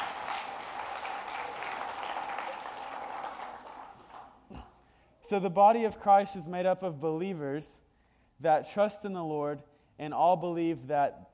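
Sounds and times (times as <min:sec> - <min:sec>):
audience applause: 0:00.0 - 0:04.4
speech: 0:05.3 - 0:07.8, 0:08.4 - 0:11.3.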